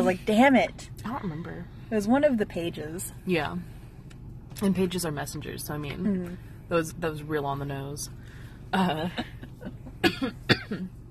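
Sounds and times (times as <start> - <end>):
speech: 0.0 - 3.8, 4.6 - 11.0
raspy throat clearing from a person with a sore throat: 10.0 - 10.9
short sharp coughs: 10.0 - 10.9.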